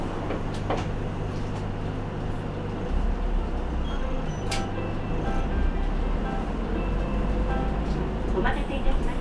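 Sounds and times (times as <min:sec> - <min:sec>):
bus engine rumbling inside a bus: 0:00.0 - 0:09.1.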